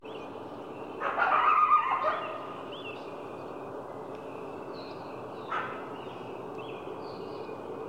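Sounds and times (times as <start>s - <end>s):
coyote barking: 1.0s - 2.6s, 5.4s - 5.9s.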